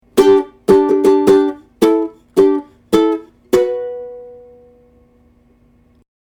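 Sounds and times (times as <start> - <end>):
ukulele fanfare: 0.1 - 4.8.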